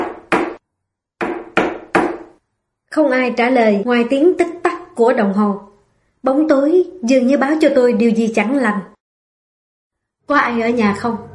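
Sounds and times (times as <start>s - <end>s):
knocking on a wooden door: 1.2s - 2.4s
speech: 2.9s - 8.9s, 10.3s - 11.3s.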